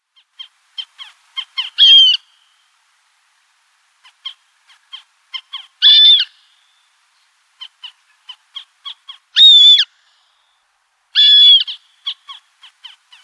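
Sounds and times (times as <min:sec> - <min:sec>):
Montagu's harrier calling: 0:00.4 - 0:02.2, 0:04.0 - 0:06.3, 0:07.6 - 0:09.9, 0:11.2 - 0:13.2.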